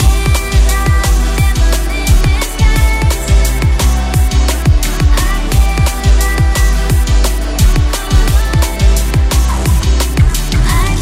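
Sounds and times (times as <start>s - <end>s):
drum and bass music: 0.0s - 11.0s.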